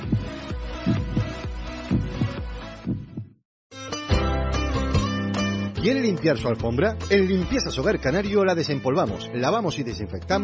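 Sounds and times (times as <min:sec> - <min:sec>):
heartbeat sound effect thudding: 0:00.0 - 0:03.4
music bed: 0:00.0 - 0:10.4
speech: 0:05.8 - 0:10.4.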